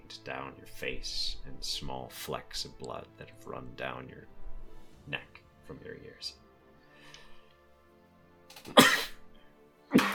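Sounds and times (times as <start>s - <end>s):
speech: 0.1s - 4.4s, 5.0s - 6.4s, 8.6s - 9.0s, 9.9s - 10.1s
loud breathy sneeze: 8.7s - 9.2s, 9.9s - 10.1s.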